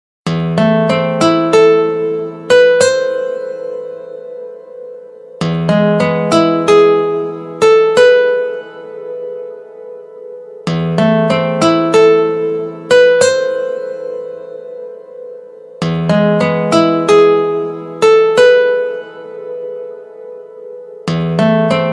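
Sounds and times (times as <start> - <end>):
guitar music: 0.3 - 21.9.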